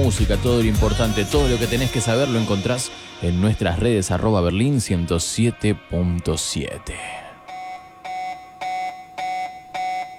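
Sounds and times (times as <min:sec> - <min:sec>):
speech: 0:00.1 - 0:07.2
electronic alarm ringtone beeping: 0:07.0 - 0:10.1.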